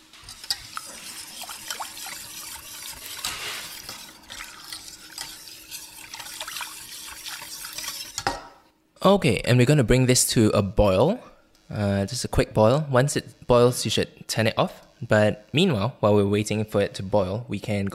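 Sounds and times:
spoon stirring chocolate and cocoa powder in a pot until it melts: 0:00.1 - 0:08.4
speech: 0:09.1 - 0:17.9.

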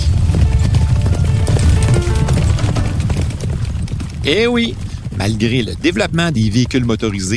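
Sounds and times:
many horse hooves clip-clopping: 0:00.0 - 0:07.3
speech: 0:04.2 - 0:07.3.

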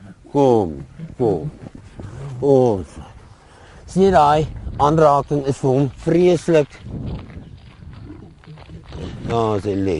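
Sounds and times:
lion growling in a low continuous rumble: 0:00.0 - 0:03.3, 0:08.0 - 0:09.4
speech: 0:00.3 - 0:01.6, 0:02.4 - 0:03.1, 0:03.9 - 0:07.3, 0:09.3 - 0:09.9.

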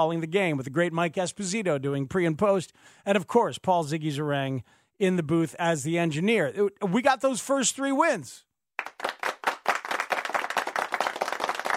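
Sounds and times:
speech: 0:00.0 - 0:09.1
applause: 0:08.8 - 0:11.7.

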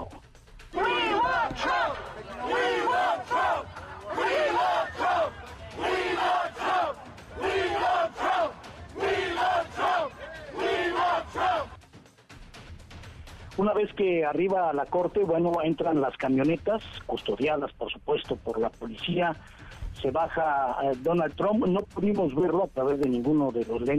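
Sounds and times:
large crowd chanting in unison outside a courthouse: 0:00.7 - 0:11.8
speech: 0:13.6 - 0:23.9.

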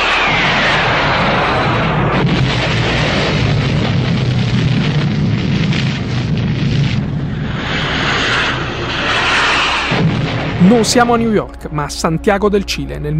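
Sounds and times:
military aircraft passing low over central Santiago Chile: 0:00.0 - 0:03.8, 0:06.8 - 0:11.5
deep rumbling booms of army bombing in Santiago Chile: 0:00.0 - 0:12.6
speech: 0:10.7 - 0:13.1.

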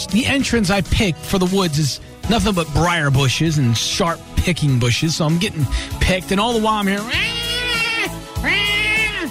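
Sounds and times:
speech: 0:00.0 - 0:07.4
cat meowing in dark woods: 0:07.0 - 0:09.2.

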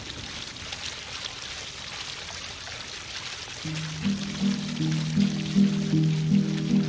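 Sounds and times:
30-metre indoor waterfall cascading in the Cloud Forest Conservatory: 0:00.0 - 0:06.8
low sustained musical notes: 0:03.7 - 0:06.8.

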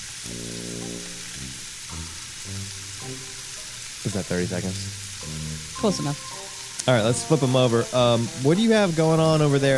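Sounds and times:
low wavering tonal hum: 0:00.0 - 0:06.3
onions and meat sizzling in a hot pan: 0:00.0 - 0:09.7
speech: 0:04.0 - 0:05.0, 0:05.8 - 0:09.7.

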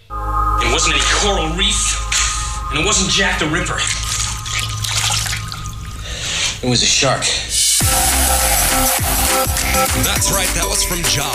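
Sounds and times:
low rumbling hum: 0:00.0 - 0:06.6
speech: 0:00.8 - 0:04.2, 0:06.6 - 0:07.6, 0:08.8 - 0:11.3
water trickling: 0:03.8 - 0:06.6.

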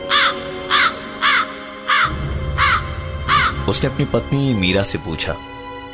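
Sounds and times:
crows cawing at night at a house in Meerut: 0:00.0 - 0:03.8
low rumbling background: 0:02.1 - 0:05.9
speech: 0:03.7 - 0:05.6.

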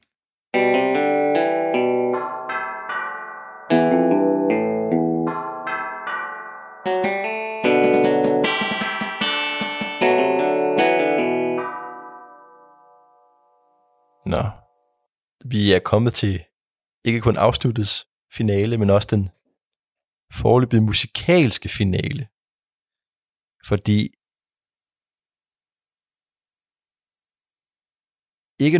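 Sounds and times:
processed glockenspiel notes: 0:00.6 - 0:13.5
speech: 0:15.7 - 0:19.4, 0:20.3 - 0:22.4, 0:23.6 - 0:24.2, 0:28.6 - 0:28.7.

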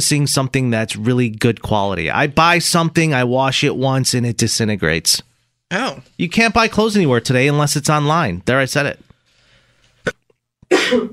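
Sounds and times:
speech: 0:00.0 - 0:09.1, 0:10.0 - 0:11.1
person sneezing: 0:10.0 - 0:11.1.

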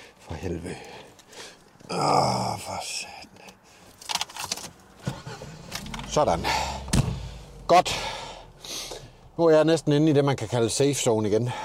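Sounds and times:
speech: 0:00.3 - 0:01.0, 0:01.9 - 0:03.1, 0:06.1 - 0:06.8, 0:07.7 - 0:08.2, 0:09.4 - 0:11.6
car engine turning over, starting and idling: 0:04.6 - 0:10.8.

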